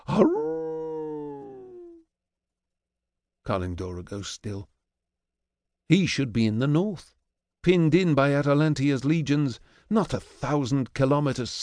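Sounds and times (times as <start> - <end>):
wolf howling mournfully: 0.0 - 2.0
speech: 0.2 - 0.4, 3.5 - 4.7, 5.9 - 11.6.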